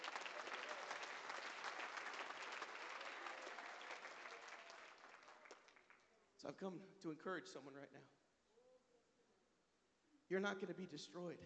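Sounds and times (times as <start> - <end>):
audience clapping: 0.0 - 6.2
speech: 6.4 - 8.2, 10.3 - 11.4.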